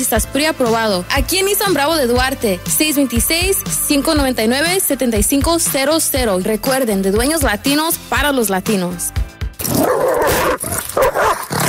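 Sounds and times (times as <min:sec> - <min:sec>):
speech: 0:00.0 - 0:10.2
dog barking and snarling while attacking a person: 0:09.6 - 0:11.6.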